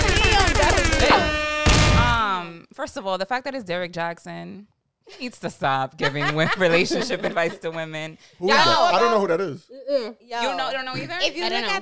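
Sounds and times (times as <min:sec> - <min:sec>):
rapid gunfire: 0:00.0 - 0:02.2
speech: 0:02.8 - 0:11.8
laughter: 0:06.0 - 0:08.0.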